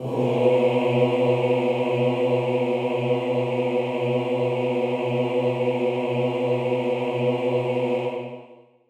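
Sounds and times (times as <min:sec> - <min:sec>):
male chorus singing: 0:00.0 - 0:08.6.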